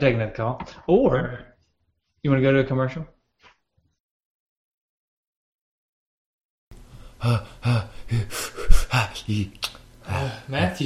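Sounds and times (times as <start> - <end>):
speech: 0.0 - 1.5, 2.2 - 3.2, 7.2 - 10.8
person breathing heavily and theatrically to calm down: 6.9 - 9.4, 10.0 - 10.6.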